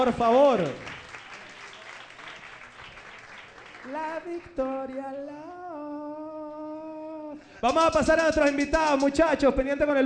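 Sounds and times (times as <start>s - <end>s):
speech: 0.0s - 0.9s, 3.8s - 5.7s, 7.3s - 10.0s
audience applause for a DJ, guitarist and beatboxer: 0.0s - 4.6s.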